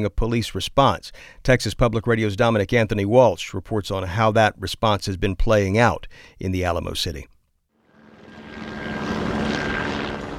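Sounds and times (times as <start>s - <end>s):
speech: 0.0s - 7.3s
police helicopter droning overhead: 7.8s - 10.3s.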